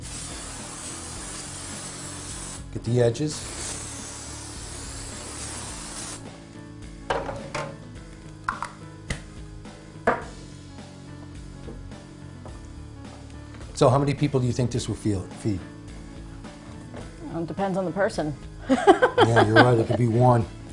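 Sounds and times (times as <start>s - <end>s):
carnauba non-stick cooking spray sprayed onto a baking sheet: 0.0s - 6.4s
speech: 2.8s - 3.6s, 13.8s - 15.8s, 17.4s - 20.6s
laughter: 18.6s - 20.4s.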